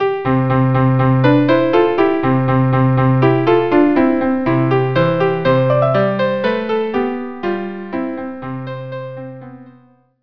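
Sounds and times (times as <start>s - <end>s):
viola playing a march: 1.1s - 8.1s.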